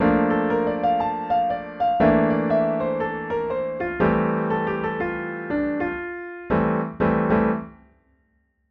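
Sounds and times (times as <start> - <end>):
two five one jazz piano lick improvisation: 0.0 - 7.8.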